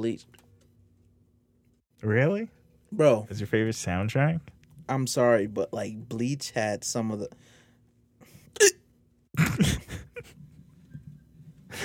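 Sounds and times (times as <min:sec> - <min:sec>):
speech: 0:00.0 - 0:00.4, 0:02.0 - 0:07.6, 0:08.5 - 0:08.8, 0:09.5 - 0:09.9
breathy noise: 0:07.3 - 0:08.5
person hiccuping into microphone: 0:08.5 - 0:09.9.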